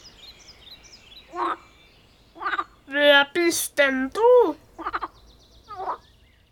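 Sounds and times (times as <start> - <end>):
person's voice imitating a tree frog croaking: 1.3 - 1.6, 4.4 - 5.1, 5.7 - 6.0
speech: 3.5 - 4.6.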